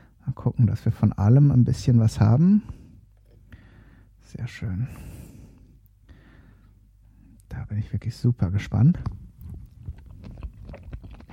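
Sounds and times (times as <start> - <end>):
speech: 0.5 - 2.8, 4.3 - 5.2, 7.7 - 9.1
person chewing food made with freshly prepared mayonnaise: 9.0 - 11.3.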